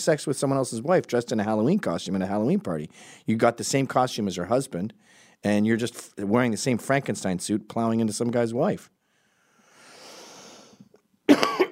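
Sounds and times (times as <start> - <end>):
speech: 0.0 - 9.0
long soft breathy intake: 9.1 - 10.9
loud rough cough: 11.3 - 11.7.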